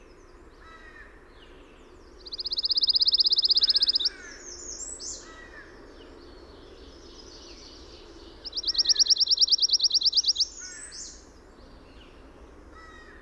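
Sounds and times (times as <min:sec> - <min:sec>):
pine warbler song with fast even musical trills: 0:00.0 - 0:13.1
other birds giving faint chirps and harsh notes: 0:02.1 - 0:11.3.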